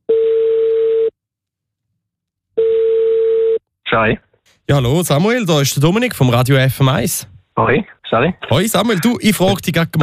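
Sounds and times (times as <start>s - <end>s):
telephone line ringing tone during an outgoing call: 0.1s - 1.1s, 2.6s - 3.6s
speech: 4.0s - 10.0s.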